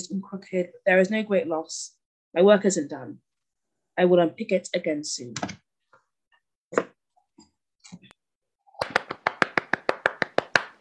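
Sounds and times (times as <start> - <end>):
speech: 0.1 - 3.3, 4.0 - 5.6, 6.7 - 6.9
hands clapping in applause: 8.8 - 10.7.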